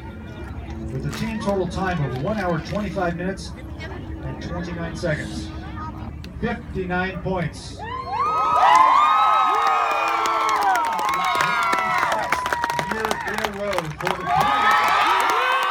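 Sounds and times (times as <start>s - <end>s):
speech: 0.9s - 5.6s, 6.4s - 7.9s
crowd cheering and shouting at a high school state championship trophy ceremony: 7.7s - 15.7s
whoops and high-pitched yells: 7.8s - 13.4s, 14.2s - 15.7s
scattered clapping: 9.6s - 15.7s.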